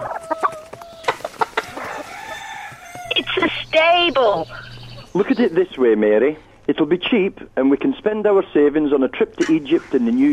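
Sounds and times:
chickens clucking in a little room at the back of a stable: 0.0 - 6.0
speech: 3.8 - 4.6, 5.2 - 10.3.

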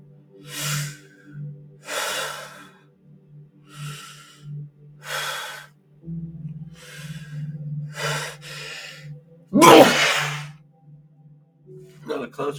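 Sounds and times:
heavy breathing: 0.5 - 1.0, 1.9 - 2.8, 3.7 - 5.7, 6.8 - 10.5
stifled near-sneeze: 9.6 - 10.5
speech: 12.4 - 12.5.

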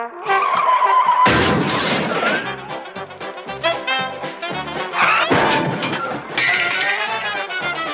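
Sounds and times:
car tires screeching in a long high skid: 0.2 - 1.4, 5.0 - 5.6
loud car crash: 0.3 - 2.7, 5.0 - 7.6
shattering glass: 1.2 - 2.4, 5.2 - 7.4
clattering debris: 1.2 - 2.6, 5.0 - 7.8
smashing metal: 1.2 - 2.6, 5.0 - 7.7.

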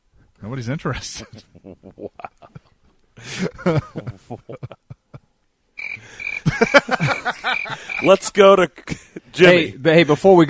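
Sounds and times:
speech: 0.4 - 2.6, 3.2 - 4.8, 8.0 - 10.4
laughter: 1.2 - 5.3, 6.0 - 9.7
crickets chirping sound effect: 5.8 - 8.2
croaking calls: 5.8 - 8.2.

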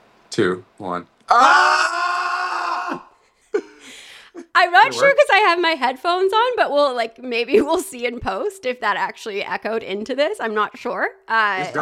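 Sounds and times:
speech: 0.4 - 1.7, 4.6 - 11.8
two people yelling from another room: 1.3 - 3.1.

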